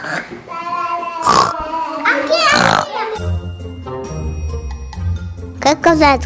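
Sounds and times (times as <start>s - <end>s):
child imitating pig oinks: 0.0s - 3.3s
speech: 0.2s - 0.8s, 5.6s - 6.2s.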